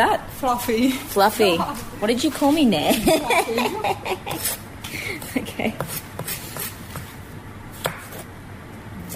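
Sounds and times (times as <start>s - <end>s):
speech: 0.0s - 6.1s
laughter: 2.9s - 4.5s
knife dicing food on a chopping board: 5.2s - 7.2s, 7.8s - 8.3s.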